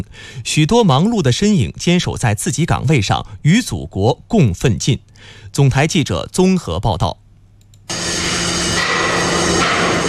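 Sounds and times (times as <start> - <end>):
speech: 0.0 - 7.2
machinery and tool noise from a high-speed railway station construction site: 7.9 - 10.0.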